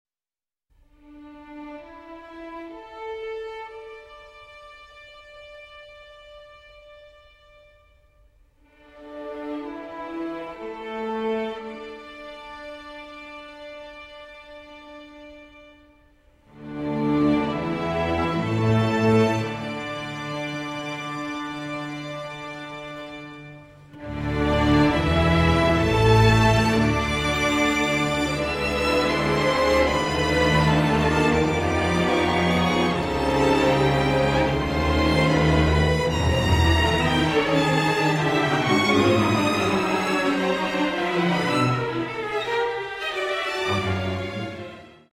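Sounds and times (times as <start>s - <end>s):
strings: 1.0s - 45.1s.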